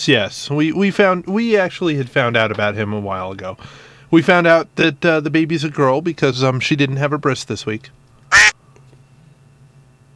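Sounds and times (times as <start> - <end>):
speech: 0.0 - 8.5
faint low hum: 0.0 - 10.1
loud nasal duck quack: 8.3 - 8.6.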